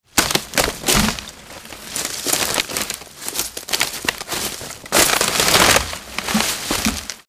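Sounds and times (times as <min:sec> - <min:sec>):
person jumping up and down on a wood pile in the north woods of Wisco: 0:00.0 - 0:07.2.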